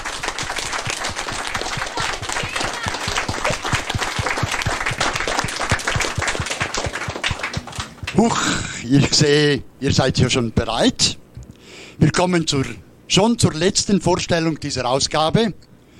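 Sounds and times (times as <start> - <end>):
crowd applauding: 0.0 - 8.5
speech: 8.2 - 11.2, 12.1 - 15.7.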